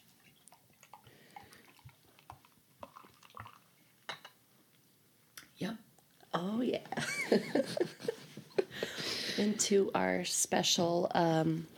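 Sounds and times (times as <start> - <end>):
beer poured into a large stein: 0.9 - 4.1
speech: 6.4 - 8.0, 9.4 - 11.7
laughter: 7.0 - 9.5.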